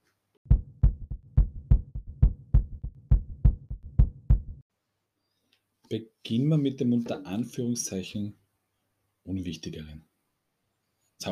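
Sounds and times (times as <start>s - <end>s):
heartbeat thumping: 0.5s - 4.6s
speech: 5.9s - 8.4s, 9.3s - 10.1s.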